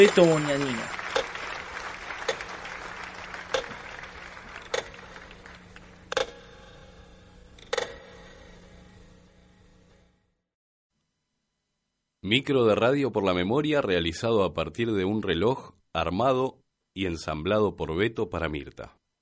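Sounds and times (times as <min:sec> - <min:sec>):
speech: 0:00.0 - 0:01.0, 0:12.3 - 0:19.0
audience applause for musicians: 0:00.0 - 0:06.0
sharp louder claps or knocks: 0:00.0 - 0:06.5.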